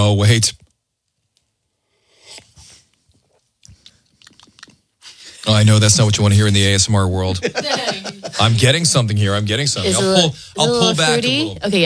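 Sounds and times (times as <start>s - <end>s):
speech: 0.0s - 0.6s, 5.5s - 11.8s
person slurping hot coffee with creamer: 2.1s - 2.9s, 3.7s - 4.8s
mouth smacking clicks: 3.6s - 4.8s
laughter: 6.3s - 11.6s.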